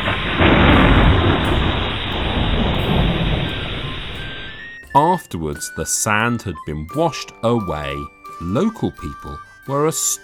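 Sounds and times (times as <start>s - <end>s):
deep rolling rumble of thunder on an island in the north of Scotland: 0.0s - 4.8s
heavy rain in a thunderstorm on an island in the north of Scotland: 0.0s - 4.8s
speech: 5.0s - 10.2s.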